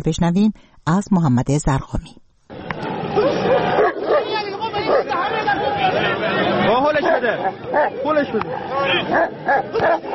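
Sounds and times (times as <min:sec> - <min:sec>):
speech: 0:00.0 - 0:02.2, 0:06.8 - 0:10.1
noisy crowd shouting and chattering: 0:02.5 - 0:10.1
dogs barking, snarling and yelping in a dogfight: 0:03.0 - 0:05.2, 0:07.0 - 0:10.1.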